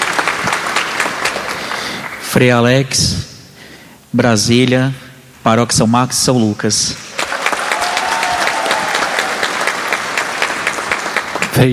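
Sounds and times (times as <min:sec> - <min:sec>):
crowd applauding: 0:00.0 - 0:02.3, 0:07.1 - 0:11.7
speech: 0:02.4 - 0:03.3, 0:04.1 - 0:07.0, 0:11.6 - 0:11.7.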